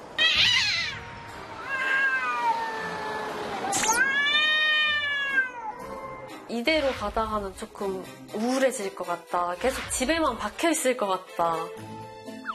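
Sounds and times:
cat meowing at the door: 0:00.2 - 0:06.4
speech: 0:06.5 - 0:12.0.

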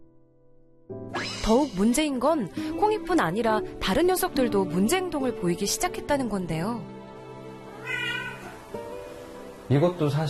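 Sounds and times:
speech: 0:00.9 - 0:06.9, 0:09.7 - 0:10.2
cat meowing in a home shared by several cats: 0:07.7 - 0:08.7.

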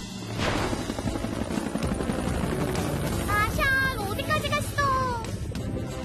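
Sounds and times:
helicopter rotor thumping: 0:00.1 - 0:05.9.

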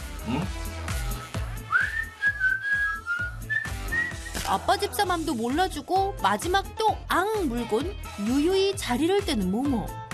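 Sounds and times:
speech: 0:00.2 - 0:00.7, 0:04.5 - 0:10.0
man whistling a short melodic tune: 0:01.7 - 0:04.4.

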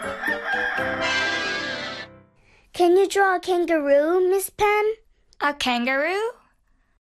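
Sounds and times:
rooster crowing: 0:00.0 - 0:02.1
speech: 0:03.0 - 0:06.4.

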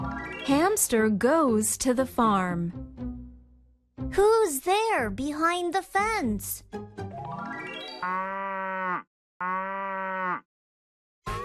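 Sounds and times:
speech: 0:00.4 - 0:03.0, 0:04.2 - 0:07.0, 0:08.0 - 0:08.5
cow mooing: 0:08.0 - 0:10.5.

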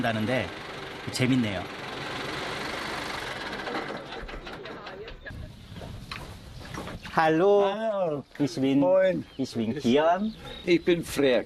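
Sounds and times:
speech: 0:00.0 - 0:01.8, 0:07.2 - 0:11.4
tractor engine rumbling and chugging outdoors: 0:00.0 - 0:07.4.

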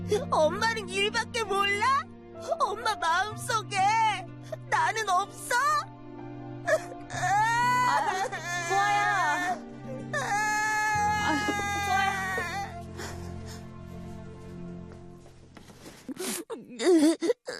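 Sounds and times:
speech: 0:00.1 - 0:05.9
child crying: 0:06.7 - 0:12.8, 0:16.6 - 0:17.5.

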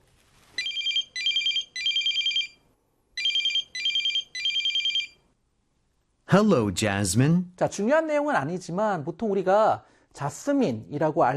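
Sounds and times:
telephone ringing with short electronic trills: 0:00.6 - 0:02.6, 0:03.2 - 0:05.2
speech: 0:06.3 - 0:11.3.

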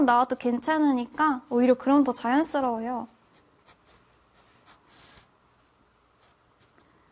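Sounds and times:
speech: 0:00.0 - 0:03.2
quiet hiss: 0:00.0 - 0:07.0
pen sketching over a pencil sketch on paper: 0:03.3 - 0:05.3.

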